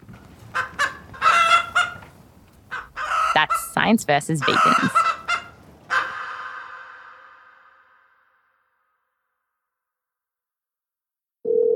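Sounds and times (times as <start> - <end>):
hens clucking and squawking: 0.5 - 7.2
speech: 3.4 - 5.2.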